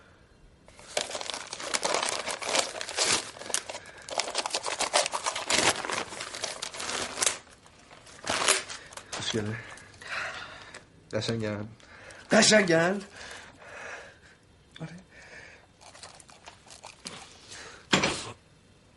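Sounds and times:
gift wrapping paper crinkling as it's opened: 0.7s - 10.0s, 15.8s - 17.4s
wrapping paper tearing as a gift-wrapped drinking glass is opened: 0.8s - 8.9s
speech: 9.3s - 9.7s, 11.1s - 13.3s.

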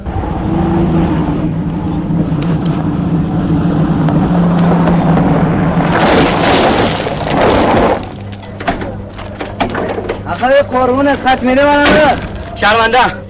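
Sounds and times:
rough struggling engine of a broken-down car droning: 0.0s - 13.2s
speech: 10.5s - 13.2s.

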